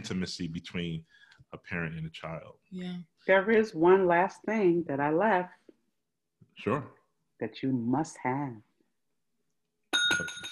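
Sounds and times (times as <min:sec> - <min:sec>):
speech: 0:00.0 - 0:05.6, 0:06.6 - 0:08.7, 0:10.1 - 0:10.5
bell ringing loudly in rapid metallic strikes: 0:10.0 - 0:10.5.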